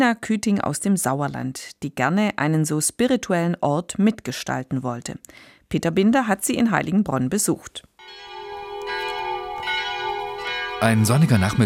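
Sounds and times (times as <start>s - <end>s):
speech: 0.0s - 8.4s, 10.8s - 11.6s
church bells ringing at a convent on a sunny afternoon: 8.0s - 11.6s.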